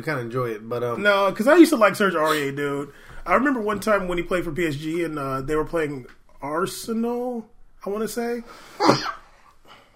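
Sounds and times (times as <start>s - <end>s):
speech: 0.0s - 9.2s
person coughing: 8.8s - 9.2s.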